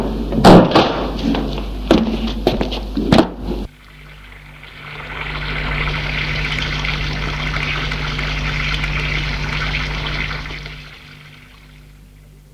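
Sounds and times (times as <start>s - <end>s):
low constant hum: 0.0s - 12.5s
shower water running: 3.7s - 12.2s.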